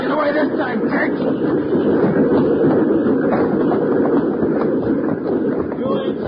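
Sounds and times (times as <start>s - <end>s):
moving train rumbling and clattering on rails: 0.0s - 6.2s
speech: 0.3s - 1.7s.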